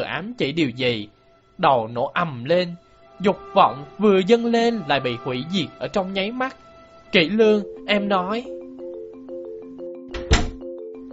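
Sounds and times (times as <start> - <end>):
speech: 0.1 - 8.6
soft repeating electronic tone pattern: 7.2 - 11.1
door being shut: 10.1 - 10.6.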